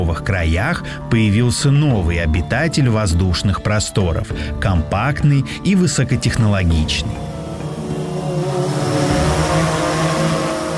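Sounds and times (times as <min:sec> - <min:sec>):
speech: 0:00.0 - 0:07.3
cargo drone flying overhead with propeller hum and whining harmonics: 0:06.9 - 0:10.7.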